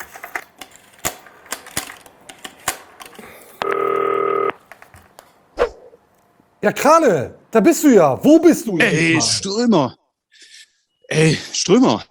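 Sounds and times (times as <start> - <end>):
phone button clicks while dialing: 2.3 - 5.3
steady electronic telephone tone: 3.6 - 4.6
speech: 6.6 - 10.0, 11.2 - 12.1.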